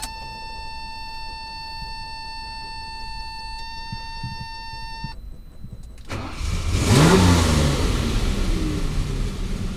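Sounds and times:
engine starting: 0:05.5 - 0:09.6.

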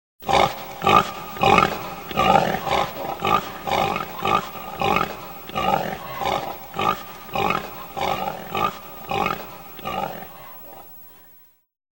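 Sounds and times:
pig grunting: 0:00.2 - 0:11.4.

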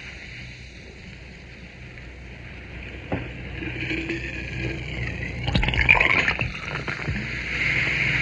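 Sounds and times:
liquid pouring into glass: 0:03.1 - 0:07.5
bottle opening: 0:03.1 - 0:08.1.

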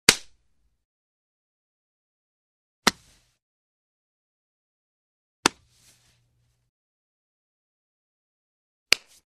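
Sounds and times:
hand slapping a face: 0:00.1 - 0:00.4, 0:02.8 - 0:03.2, 0:05.4 - 0:05.8, 0:08.9 - 0:09.2.

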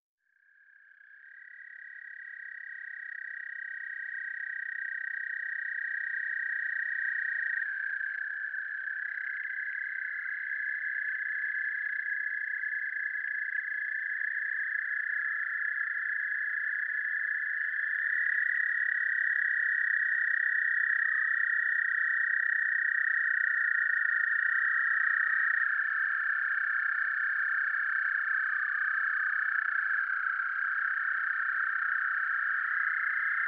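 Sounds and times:
American toad calling: 0:00.5 - 0:33.4.

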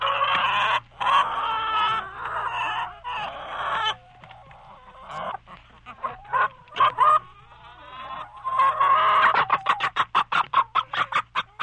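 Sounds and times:
chickens clucking and squawking in a chicken coop: 0:00.0 - 0:11.6.

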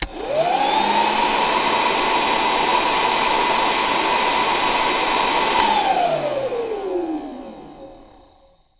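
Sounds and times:
household cleaner: 0:00.0 - 0:08.4.

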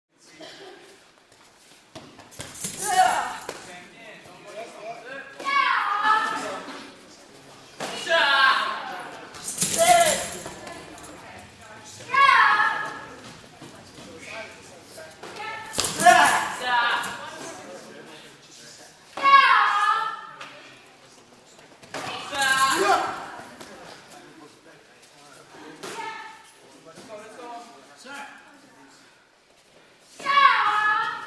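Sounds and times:
karate class ambience: 0:00.2 - 0:31.2.

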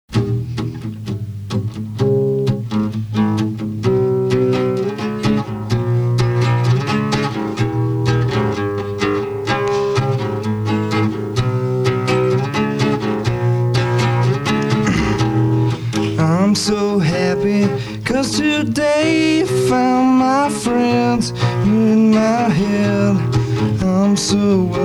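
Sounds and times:
solo acoustic guitar: 0:00.1 - 0:24.8.

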